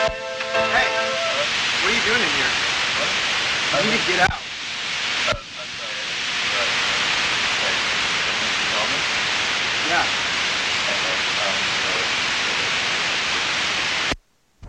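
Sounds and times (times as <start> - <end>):
loud steady radio static hiss: 0.0 - 14.6
faint voice-like murmurs under static: 1.1 - 4.4, 5.3 - 7.0, 10.9 - 12.8
speech: 2.1 - 2.6, 3.7 - 4.4, 9.9 - 10.3.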